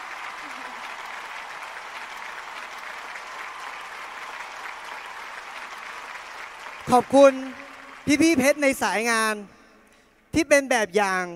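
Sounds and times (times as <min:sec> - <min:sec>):
large audience applause: 0:00.0 - 0:09.0
speech: 0:06.9 - 0:09.6, 0:10.3 - 0:11.3.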